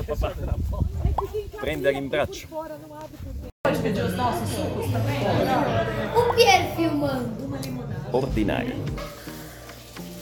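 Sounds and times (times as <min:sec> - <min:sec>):
speech: 0:00.1 - 0:00.8, 0:01.6 - 0:09.2
busy restaurant hum of many overlapping voices chattering: 0:03.7 - 0:08.9.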